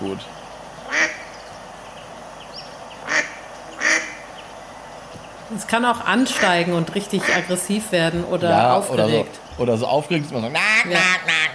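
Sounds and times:
faint noise: 0:00.0 - 0:11.5
speech: 0:00.1 - 0:00.4, 0:05.5 - 0:11.4
mallard duck quacking: 0:00.9 - 0:01.3, 0:03.0 - 0:04.2, 0:06.1 - 0:07.7, 0:10.5 - 0:11.5.

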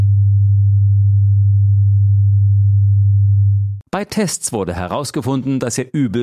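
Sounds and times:
pure 100 Hz sine tone: 0:00.0 - 0:03.8
speech: 0:03.9 - 0:06.2.

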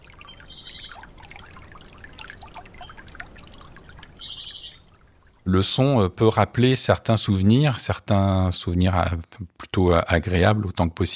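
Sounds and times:
water lapping and trickling in a stream among reeds: 0:00.0 - 0:07.9
bright bird chirps: 0:00.2 - 0:01.1, 0:02.7 - 0:03.2, 0:03.8 - 0:05.3
speech: 0:05.5 - 0:11.1.

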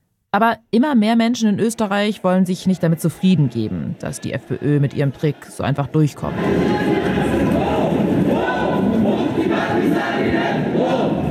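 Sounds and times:
speech: 0:00.4 - 0:07.5
crowd of thousands of protesters chanting in a city centre demonstration: 0:02.6 - 0:11.2.

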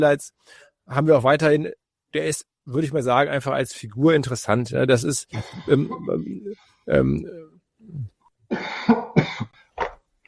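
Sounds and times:
speech: 0:00.0 - 0:09.6
person coughing in harsh bursts: 0:07.9 - 0:09.9.

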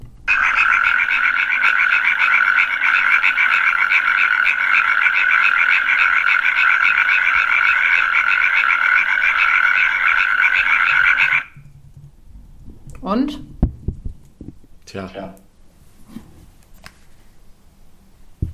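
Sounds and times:
natterjack toad calling in a rattling trill: 0:00.3 - 0:11.6.

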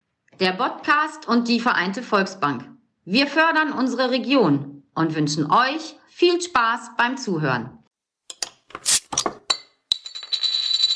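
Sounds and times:
speech: 0:00.4 - 0:07.8
glasses clinking in a toast: 0:08.3 - 0:10.9.

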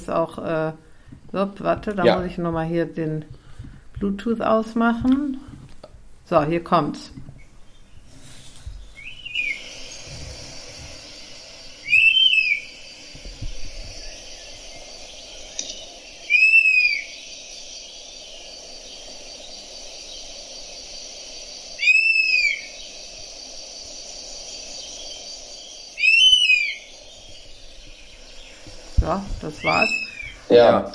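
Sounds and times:
steady hiss of insects: 0:00.0 - 0:30.9
speech: 0:00.1 - 0:03.4, 0:04.0 - 0:05.5, 0:06.3 - 0:07.3, 0:30.5 - 0:30.9
European honey buzzard whistled calls: 0:08.7 - 0:30.5.

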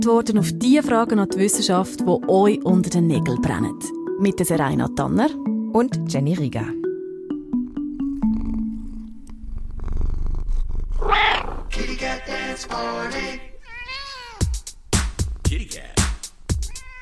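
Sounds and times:
speech: 0:00.0 - 0:06.8
cat purring: 0:07.6 - 0:15.6
cat meowing: 0:11.0 - 0:11.7, 0:13.6 - 0:14.6, 0:16.6 - 0:16.9.

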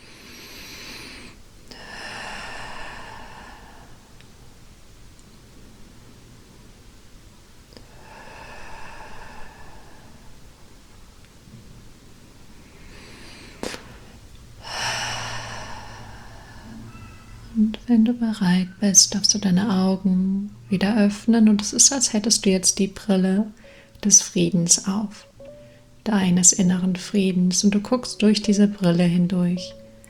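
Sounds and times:
slow breathing in and out during a guided meditation: 0:00.0 - 0:05.5, 0:07.8 - 0:10.9, 0:12.5 - 0:17.6, 0:23.6 - 0:24.0
speech: 0:17.6 - 0:25.3, 0:26.0 - 0:29.8.

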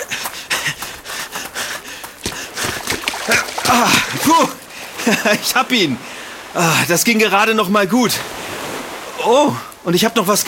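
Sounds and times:
water sloshing and splashing: 0:01.9 - 0:06.4
ball splashing into water: 0:02.2 - 0:04.4
speech: 0:03.3 - 0:08.4, 0:09.2 - 0:10.4.

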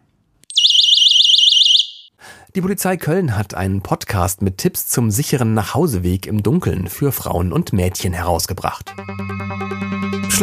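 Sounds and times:
personal pocket alarm shrieking with a piercing warbling tone: 0:00.5 - 0:02.1
speech: 0:02.6 - 0:10.4.

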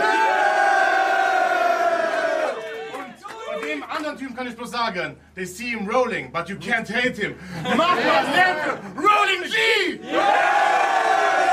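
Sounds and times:
crowd cheering and shouting at a rap battle: 0:00.0 - 0:03.7, 0:10.0 - 0:11.5
speech: 0:04.2 - 0:10.6.

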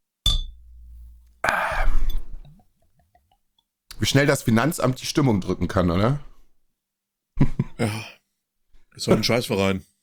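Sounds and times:
beer glasses clinking in a toast: 0:00.3 - 0:02.6
speech: 0:04.0 - 0:06.3, 0:07.8 - 0:08.2, 0:09.0 - 0:09.9.

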